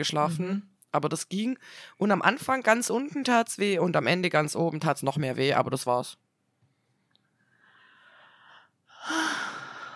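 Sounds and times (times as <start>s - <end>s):
speech: 0.0s - 6.2s, 9.0s - 9.4s
soft breathy inhale: 7.4s - 9.9s.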